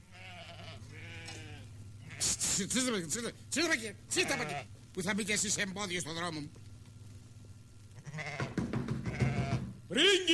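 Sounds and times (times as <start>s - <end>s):
sheep bleating in a chorus: 0.0s - 2.5s, 4.1s - 4.7s, 8.0s - 9.6s
speech: 2.2s - 6.7s, 9.9s - 10.3s.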